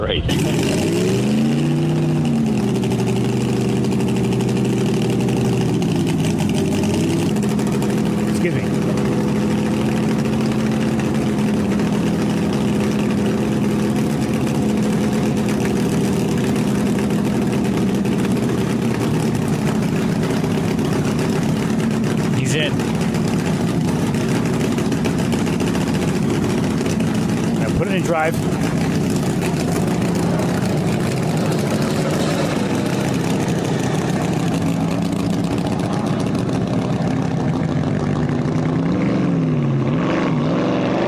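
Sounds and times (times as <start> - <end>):
speech: 0.0 - 1.0
land speed record car engine roaring: 0.0 - 41.0.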